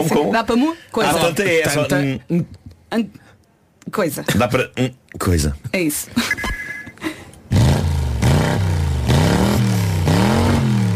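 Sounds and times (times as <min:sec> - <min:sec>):
speech: 0:00.0 - 0:03.2, 0:03.9 - 0:06.5
loud engine revving: 0:07.5 - 0:10.9.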